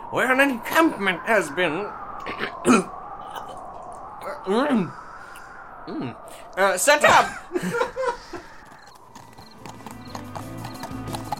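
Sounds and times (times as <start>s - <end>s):
faint ambient hum: 0.0s - 10.0s
speech: 0.1s - 3.0s, 4.4s - 5.0s, 5.9s - 8.2s
laughter: 7.2s - 8.6s
horse hooves clopping: 8.6s - 11.3s.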